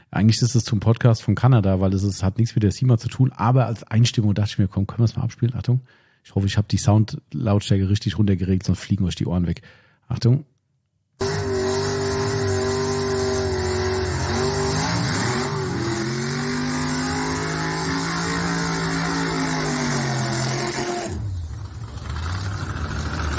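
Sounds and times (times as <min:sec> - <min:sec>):
speech: 0:00.1 - 0:10.5
quarter-mile dragster engine roaring during a burnout: 0:11.2 - 0:23.3.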